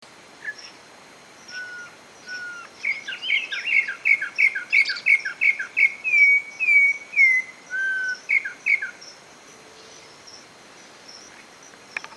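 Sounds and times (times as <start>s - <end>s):
corrupião bird singing: 0.4s - 0.8s, 1.4s - 12.1s.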